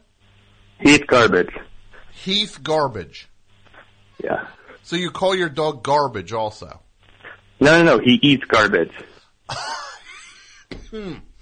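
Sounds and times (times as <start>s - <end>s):
speech: 0.8s - 3.3s, 4.2s - 6.8s, 7.6s - 9.8s, 10.9s - 11.3s
person coughing with a lingering cough: 10.7s - 11.3s.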